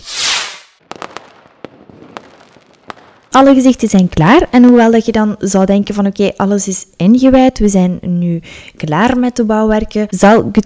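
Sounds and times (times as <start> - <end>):
rocket whooshing up with a loud hiss: 0.0 - 1.4
fireworks exploding: 0.0 - 4.7
speech: 3.4 - 10.6.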